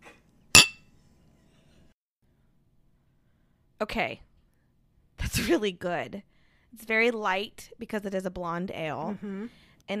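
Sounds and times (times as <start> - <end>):
two new beer glasses of peach blonde ale clinking in a toast: 0.6 - 0.8
speech: 3.8 - 4.3, 5.3 - 9.9.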